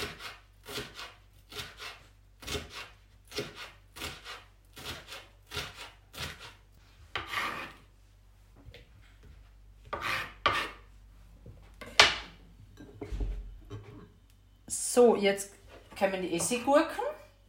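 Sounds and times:
knife cutting a bell pepper into small pieces on a cutting board: 0:00.0 - 0:07.8, 0:09.8 - 0:10.8
speech: 0:15.0 - 0:17.1.

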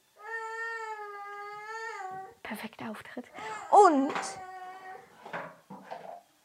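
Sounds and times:
baby crying: 0:00.2 - 0:02.4, 0:03.3 - 0:05.2
speech: 0:02.5 - 0:04.5
dishes being handled in a kitchen: 0:03.9 - 0:04.4, 0:05.2 - 0:06.2.

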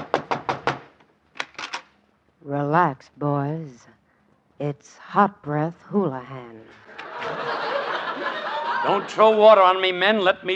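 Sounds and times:
knuckles knocking on a door: 0:00.0 - 0:00.9
speech: 0:02.4 - 0:04.0, 0:04.6 - 0:10.5
laughter: 0:06.8 - 0:10.5.

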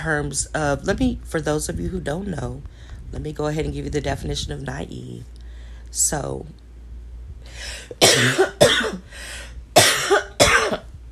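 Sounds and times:
speech: 0:00.0 - 0:06.6, 0:07.5 - 0:09.4
breathy sounds: 0:07.4 - 0:08.0, 0:09.0 - 0:09.6
person with a lingering cough after COVID coughing harshly: 0:07.8 - 0:09.1, 0:09.8 - 0:10.9.

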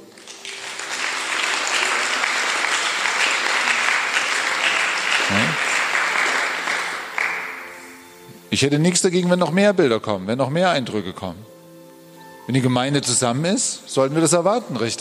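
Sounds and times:
church audience applause: 0:00.0 - 0:07.9
speech: 0:08.5 - 0:11.5, 0:12.5 - 0:14.9.

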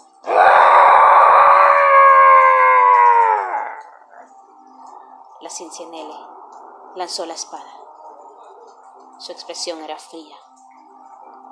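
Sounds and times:
demonic roar with a wailing, moaning tone: 0:00.3 - 0:04.3
speech: 0:05.5 - 0:07.8, 0:09.2 - 0:10.6.

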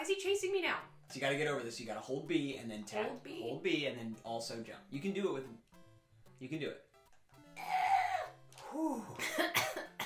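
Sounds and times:
speech: 0:00.0 - 0:05.8, 0:06.4 - 0:06.9, 0:08.7 - 0:09.8
person coughing fit: 0:09.1 - 0:10.0.

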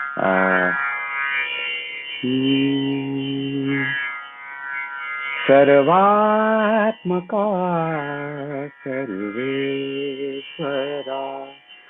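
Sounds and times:
speech: 0:00.1 - 0:00.8, 0:02.2 - 0:03.5, 0:05.5 - 0:11.6
person humming a devotional melody: 0:00.2 - 0:00.8, 0:02.2 - 0:04.0, 0:05.5 - 0:11.6.

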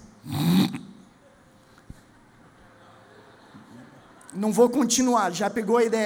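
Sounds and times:
voice imitating hawking and throat-clearing: 0:00.2 - 0:01.0
speech: 0:04.4 - 0:06.0.

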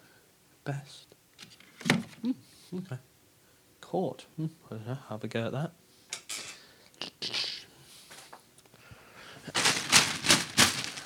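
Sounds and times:
speech: 0:00.7 - 0:01.2, 0:02.2 - 0:03.1, 0:03.9 - 0:05.8
plastic bag crinkling and crackling as it is picked up off a studio floor: 0:09.4 - 0:11.0.

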